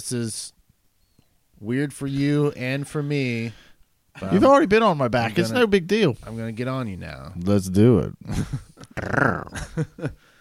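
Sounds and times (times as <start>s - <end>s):
speech: 0.0s - 0.6s, 1.6s - 10.2s
person imitating the rough throaty growl of a dire wolf: 8.9s - 9.6s.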